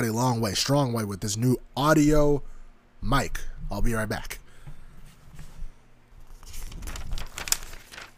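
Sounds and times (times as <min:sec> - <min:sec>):
speech: 0:00.0 - 0:04.4
paper crumpling and crinkling for ASMR: 0:06.2 - 0:08.1.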